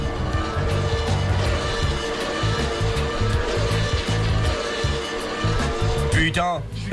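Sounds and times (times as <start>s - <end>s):
Ferrari engine roaring as it speeds along a motorway: 0.0s - 6.9s
speech: 6.3s - 6.9s.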